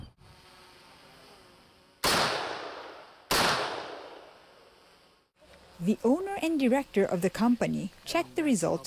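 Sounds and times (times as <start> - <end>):
assault rifle shots fired at armoured vehicle protective material: 2.0 - 4.3
speech: 5.8 - 8.8.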